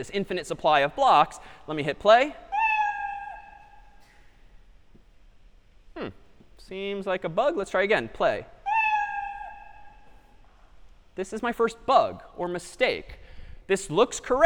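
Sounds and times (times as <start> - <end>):
speech: 0.0 - 2.4, 6.0 - 8.5, 11.2 - 14.4
cat meow sound effect played by a block-based coding program: 2.5 - 3.8, 8.6 - 10.1.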